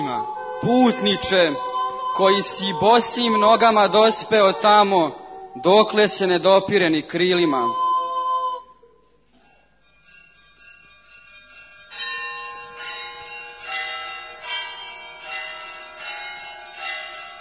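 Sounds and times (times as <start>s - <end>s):
church bells ringing in a full peal: 0.0s - 4.9s, 9.9s - 17.3s
speech: 0.1s - 7.8s.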